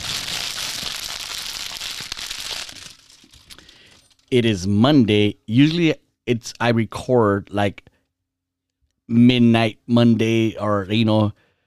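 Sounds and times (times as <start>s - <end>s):
paper sheets rustling and crinkling while shuffled: 0.0s - 4.3s
speech: 4.3s - 7.9s, 9.1s - 11.4s.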